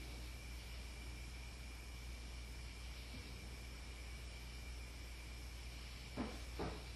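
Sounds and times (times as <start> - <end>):
faint mechanical hum: 0.0 - 6.9
steady hiss: 0.0 - 6.9
dull knocks in an attic: 6.2 - 6.9.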